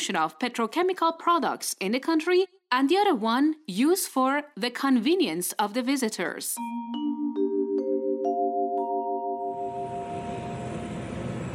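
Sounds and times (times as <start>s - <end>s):
speech: 0.0s - 7.4s
bright chime tones stepping upward: 6.6s - 11.0s
aircraft engine roar at Abadan Airport in humid weather after landing: 9.7s - 11.5s.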